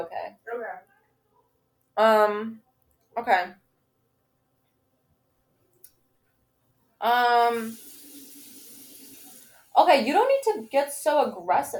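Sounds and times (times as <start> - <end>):
speech: 0.0 - 0.3, 2.0 - 2.6, 3.2 - 3.6, 7.0 - 7.9, 9.8 - 11.7
tap water running into sink for drinking water: 7.3 - 11.7.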